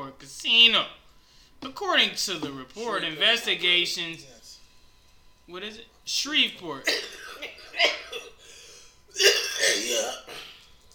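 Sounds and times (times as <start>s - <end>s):
speech: 0.1s - 1.0s, 1.6s - 4.4s, 5.5s - 8.3s, 9.2s - 10.4s
person coughing: 6.8s - 10.7s.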